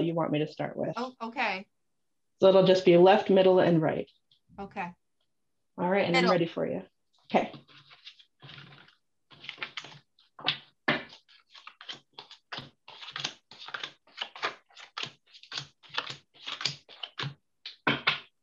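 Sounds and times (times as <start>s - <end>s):
speech: 0.0s - 1.8s, 2.4s - 5.0s, 5.8s - 7.8s
deck of cards being shuffled and cut: 7.5s - 18.3s.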